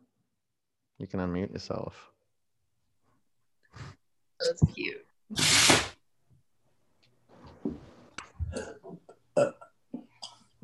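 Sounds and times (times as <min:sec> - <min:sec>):
speech: 0:01.0 - 0:02.2, 0:03.8 - 0:05.9
loud burp: 0:08.5 - 0:10.6.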